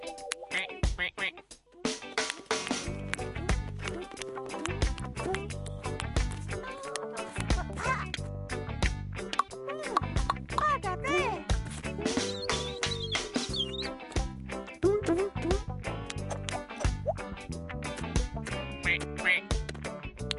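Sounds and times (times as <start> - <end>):
busy cheerful music: 0.0 - 20.3
duck quacking: 0.5 - 1.4, 18.9 - 19.5.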